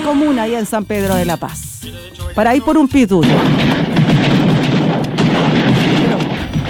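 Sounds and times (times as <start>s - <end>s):
speech: 0.1s - 4.3s
fireworks bangs at night: 3.2s - 6.6s.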